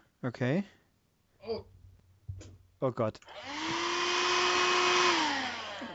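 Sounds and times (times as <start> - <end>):
speech: 0.2 - 0.8, 1.4 - 1.7, 2.4 - 3.9
vacuum cleaner running: 3.4 - 5.9.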